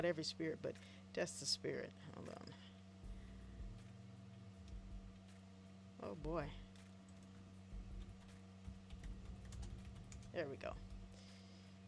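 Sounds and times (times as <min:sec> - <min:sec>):
speech: 0:00.0 - 0:02.7, 0:06.0 - 0:06.7, 0:10.3 - 0:10.9
steady low electrical hum: 0:00.0 - 0:11.8
typing on a computer keyboard: 0:08.9 - 0:10.3.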